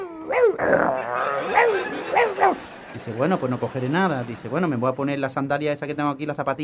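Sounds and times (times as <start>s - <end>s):
person's voice imitating a rabid dog barking inside a wardrobe: 0.0s - 2.6s
speech: 0.5s - 6.6s
laughter: 1.0s - 5.0s.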